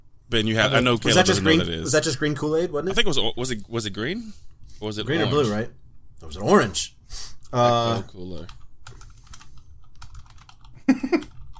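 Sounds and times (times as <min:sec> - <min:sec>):
speech: 0:00.3 - 0:08.6
computer keyboard typing clicks: 0:08.5 - 0:11.5.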